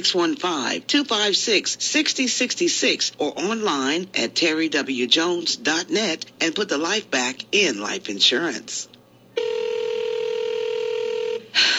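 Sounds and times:
speech: 0:00.0 - 0:09.5
electronic telephone ringback tone: 0:09.4 - 0:11.6.

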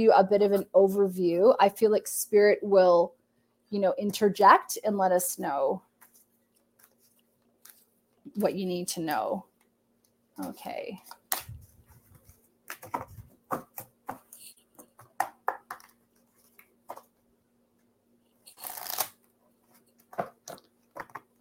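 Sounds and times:
speech: 0:00.0 - 0:05.9, 0:08.3 - 0:09.5, 0:10.4 - 0:11.2, 0:12.9 - 0:13.7
papery shuffling of a tarot deck: 0:10.4 - 0:17.1, 0:18.5 - 0:19.2.

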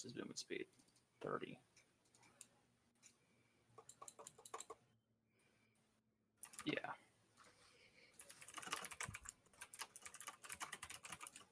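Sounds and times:
speech: 0:00.0 - 0:01.7, 0:06.6 - 0:07.0
typing on a computer keyboard: 0:03.8 - 0:04.8, 0:06.4 - 0:06.7, 0:08.2 - 0:11.5.

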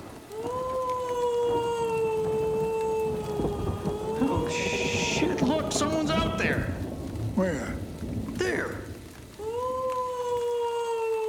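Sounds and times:
wolf howling: 0:00.0 - 0:06.8, 0:09.4 - 0:11.2
constant hiss of noise: 0:00.0 - 0:11.2
speech: 0:07.4 - 0:07.8.

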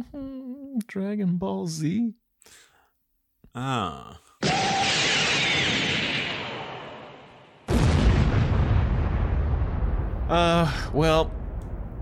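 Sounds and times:
speech: 0:00.9 - 0:02.6, 0:03.6 - 0:04.7, 0:10.3 - 0:11.4
huge rumbling planetary explosion in a video game: 0:04.4 - 0:12.0
massive blast thundering in a video game: 0:04.4 - 0:12.0.

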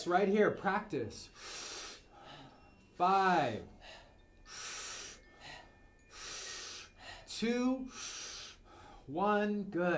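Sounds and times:
speech: 0:00.0 - 0:01.6, 0:03.0 - 0:04.6, 0:07.4 - 0:08.2, 0:09.1 - 0:09.9
rhythmic power breathing during a breathing exercise: 0:01.2 - 0:09.2.

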